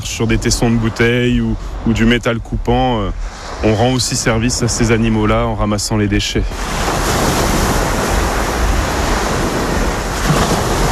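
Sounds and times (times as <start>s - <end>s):
sea waves washing onto a beach in a nature reserve: 0.0s - 10.9s
speech: 0.1s - 7.0s.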